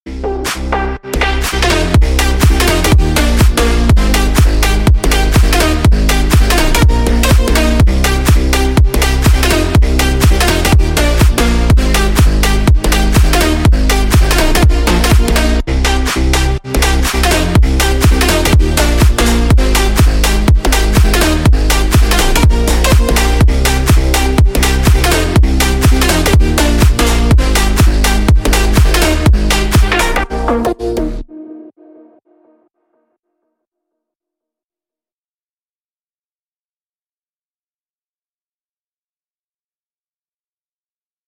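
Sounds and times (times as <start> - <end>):
bass house and future bounce music drop: 0.1 - 31.7.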